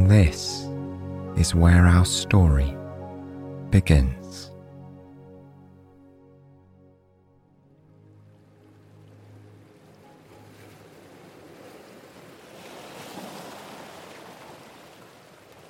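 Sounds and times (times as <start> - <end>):
speech: 0.1 - 0.5, 1.4 - 2.8, 3.7 - 4.5
gentle waves lapping against the shore: 7.9 - 15.6.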